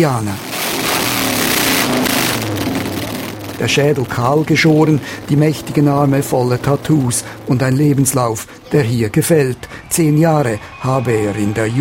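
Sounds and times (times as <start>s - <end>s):
speech: 0.0s - 0.5s, 3.6s - 11.7s
Harley-Davidson motorcycle engine roar riding onto a stage at an army base: 0.0s - 10.2s.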